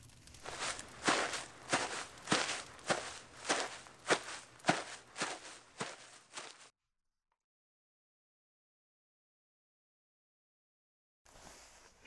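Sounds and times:
footsteps of someone walking away upstairs: 0.2 - 6.7.

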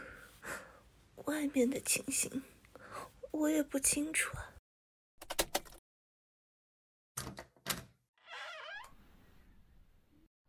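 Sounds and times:
speech: 1.4 - 2.6, 3.4 - 4.6
door creaking and squealing open: 7.2 - 9.6.

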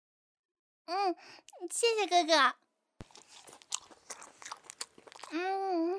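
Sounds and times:
speech: 0.9 - 3.6, 5.3 - 5.9
person chewing a steamed bun with moist smacking bites: 3.0 - 5.6.

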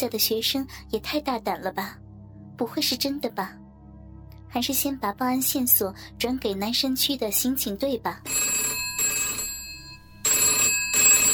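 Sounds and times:
speech: 0.0 - 2.0, 2.6 - 3.6, 4.5 - 8.8
telephone bell ringing with metallic trilling: 8.3 - 11.3.

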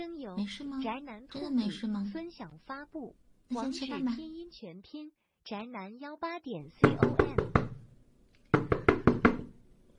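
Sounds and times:
speech: 0.0 - 7.4
loud heavy knocking on a door: 6.8 - 7.9, 8.5 - 9.5.

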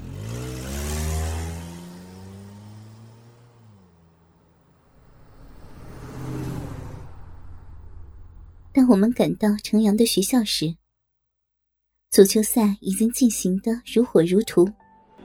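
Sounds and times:
car engine revving as the vehicle pulls away from a parking lot: 0.0 - 8.7
speech: 8.8 - 10.8, 12.1 - 14.8.

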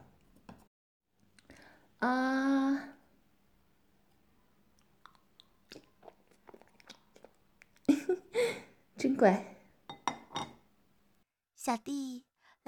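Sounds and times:
speech: 2.0 - 2.6, 9.2 - 9.5, 11.7 - 12.6
chewing a fried egg: 4.1 - 8.4.

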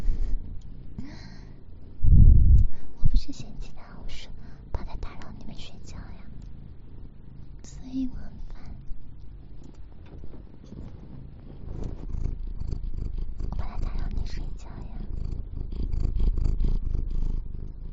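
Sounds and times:
cat purring: 0.0 - 17.9.

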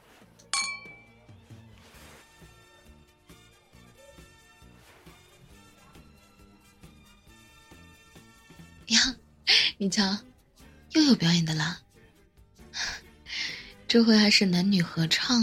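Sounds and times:
soft music: 0.0 - 15.4
glasses clinking in a toast: 0.4 - 1.2
speech: 8.9 - 9.2, 9.8 - 10.3, 11.1 - 11.8, 13.9 - 15.4.

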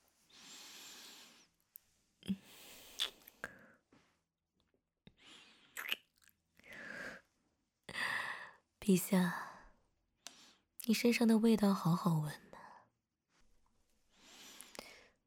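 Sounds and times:
soft kissing on the neck with wet lip smacks: 2.9 - 3.5, 5.8 - 6.4
speech: 8.9 - 9.4, 10.9 - 12.5.

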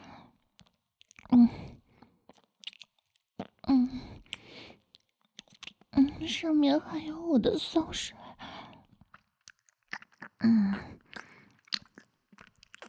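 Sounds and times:
crunching and chewing fried chicken: 0.3 - 6.0, 8.5 - 12.8
speech: 6.3 - 8.2.

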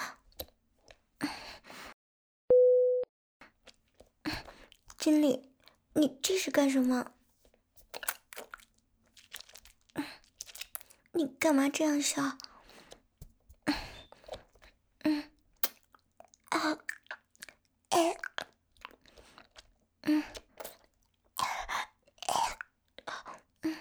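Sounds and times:
person chewing a lollipop: 3.4 - 6.4, 7.4 - 11.1, 11.8 - 23.8
speech: 5.0 - 7.2, 11.2 - 12.4.

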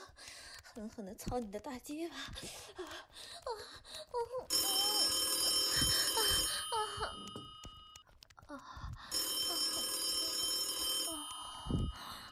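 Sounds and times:
speech: 0.9 - 3.0
telephone ringing: 4.5 - 8.2, 9.1 - 12.3.

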